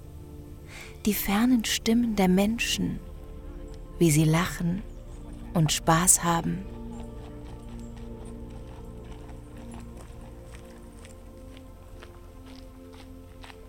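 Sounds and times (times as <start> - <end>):
speech: 1.0 - 3.1, 4.0 - 4.9, 5.5 - 6.8
footsteps crunching on earthy path: 3.4 - 13.6
footsteps on stones: 6.6 - 13.6.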